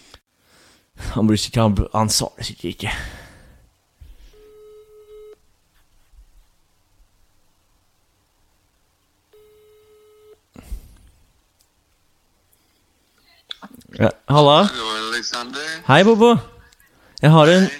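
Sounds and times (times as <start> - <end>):
speech: 1.2 - 3.2, 14.0 - 16.5, 17.2 - 17.7
faint rustle: 3.7 - 14.2
outgoing call ringback tone: 4.3 - 5.4, 9.4 - 10.4.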